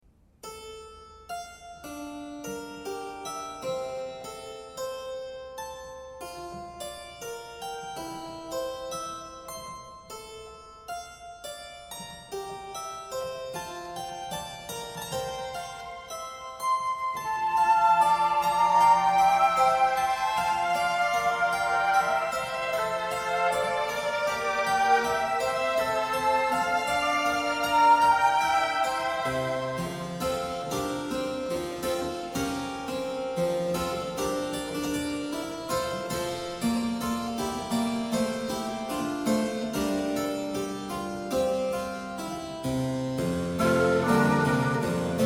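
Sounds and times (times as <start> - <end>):
strings: 0.4 - 45.2
harpsichord: 0.8 - 45.2
flute: 16.7 - 30.0, 43.6 - 45.2
oboe: 16.8 - 30.3, 43.6 - 45.2.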